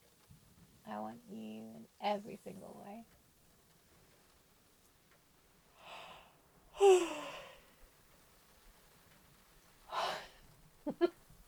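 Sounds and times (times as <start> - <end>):
speech: 0.9 - 3.2
long exhale: 5.8 - 7.7, 9.9 - 10.4
person yawning: 6.8 - 7.6.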